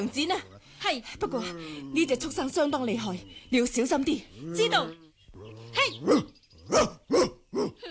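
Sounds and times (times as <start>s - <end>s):
speech: 0.0s - 5.0s, 5.8s - 7.8s
dog barking: 6.0s - 7.8s.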